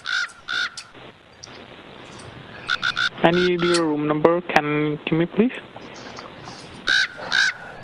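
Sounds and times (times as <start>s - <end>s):
pet bird squawking: 0.0s - 0.9s, 2.6s - 3.8s, 6.0s - 7.8s
speech: 3.2s - 5.7s.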